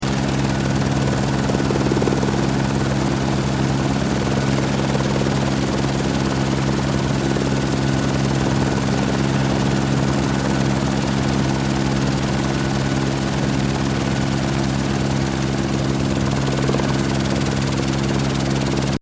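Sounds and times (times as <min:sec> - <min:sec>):
helicopter hovering or flying: 0:00.0 - 0:18.9.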